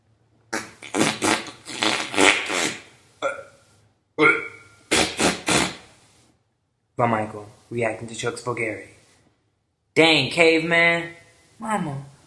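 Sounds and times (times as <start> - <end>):
rasping farts: 0.5 - 3.5, 4.2 - 5.9
throaty burps: 0.5 - 3.6, 4.2 - 5.8
speech: 7.0 - 9.0, 10.0 - 12.1.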